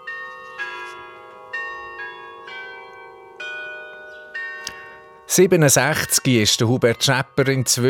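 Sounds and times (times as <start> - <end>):
carillon bells ringing from a tower: 0.0 - 7.8
speech: 5.3 - 7.8.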